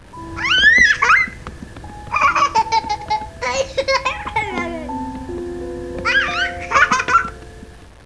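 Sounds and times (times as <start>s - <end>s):
baby laughing ringtone: 0.4s - 1.4s, 2.1s - 5.0s, 6.0s - 7.4s.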